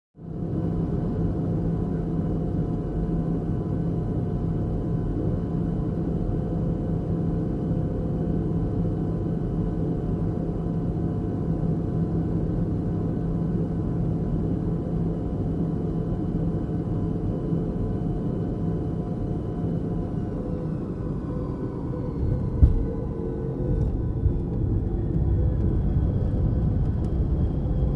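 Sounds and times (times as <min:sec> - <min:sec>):
Boeing 727 cabin interior in flight: 0:00.2 - 0:27.9
Boeing 727 landing: 0:18.2 - 0:27.9.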